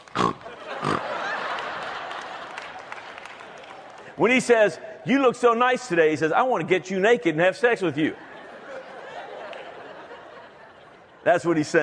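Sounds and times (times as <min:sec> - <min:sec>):
pig oinking: 0:00.2 - 0:01.0
laughter: 0:00.4 - 0:04.2, 0:08.0 - 0:11.8
speech: 0:04.2 - 0:08.2, 0:11.2 - 0:11.8.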